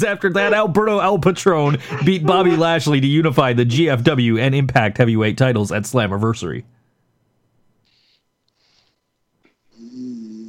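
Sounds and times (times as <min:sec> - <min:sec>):
speech: 0:00.0 - 0:06.8
laughter: 0:00.2 - 0:03.2
person snoring: 0:09.7 - 0:10.4.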